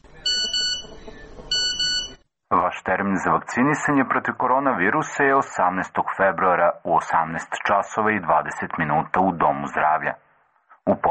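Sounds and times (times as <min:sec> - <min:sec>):
phone message notification beeps: 0:00.2 - 0:02.2
speech: 0:02.9 - 0:10.3, 0:10.9 - 0:11.1.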